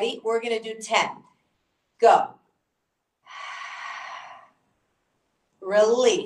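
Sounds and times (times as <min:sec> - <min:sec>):
speech: 0:00.0 - 0:01.3, 0:02.0 - 0:02.4, 0:05.6 - 0:06.2
forceful exhale through the mouth during a core exercise: 0:03.3 - 0:04.6.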